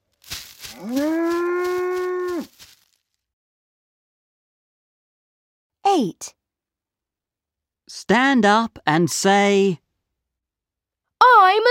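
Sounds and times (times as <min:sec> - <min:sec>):
speech: 0:00.8 - 0:01.1, 0:06.0 - 0:06.4, 0:07.9 - 0:09.8, 0:11.2 - 0:11.6
cow mooing: 0:00.8 - 0:02.5.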